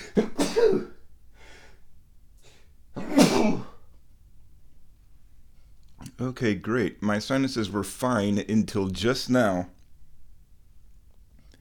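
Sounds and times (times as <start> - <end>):
person sneezing: 0.0 - 1.0, 3.0 - 3.8
speech: 6.2 - 9.8.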